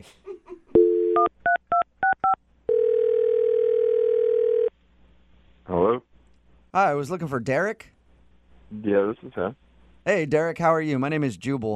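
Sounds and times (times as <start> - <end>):
speech: 0.0 - 0.2, 6.8 - 8.0, 8.7 - 11.7
telephone dial tone: 0.8 - 1.3, 2.7 - 4.7
loud ringing tone on the telephone line: 2.0 - 4.7.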